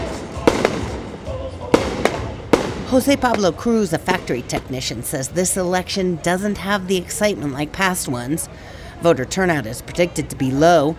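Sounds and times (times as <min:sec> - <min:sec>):
sharp fireworks bangs at a late-night election rally in Guatemala: 0:00.0 - 0:05.0
steady outdoor crowd murmur at an election rally: 0:00.0 - 0:10.9
speech: 0:02.9 - 0:10.9.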